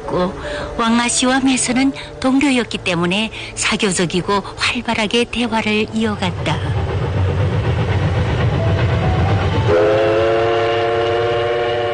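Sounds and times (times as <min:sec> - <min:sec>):
train rolling slowly along the rails through spring countryside: 0:00.0 - 0:11.9
speech: 0:00.1 - 0:06.8
long loud train horn blast: 0:09.6 - 0:11.9.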